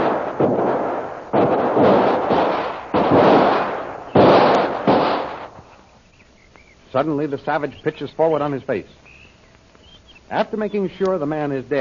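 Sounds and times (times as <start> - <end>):
gunshots exchanged in a shootout: 0.0 - 5.6
speech: 7.0 - 9.1, 10.3 - 11.7.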